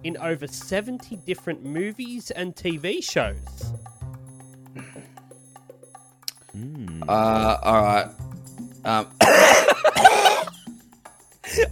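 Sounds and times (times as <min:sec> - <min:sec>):
speech: 0:00.0 - 0:03.9, 0:06.6 - 0:08.2, 0:08.8 - 0:10.2, 0:11.5 - 0:11.7
person coughing: 0:04.8 - 0:05.2, 0:09.2 - 0:10.7, 0:11.5 - 0:11.7.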